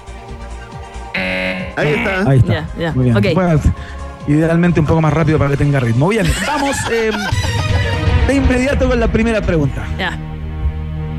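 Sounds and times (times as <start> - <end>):
quiz game buzzer: 1.2 - 2.3
speech: 1.8 - 10.3
laughter: 6.1 - 8.3.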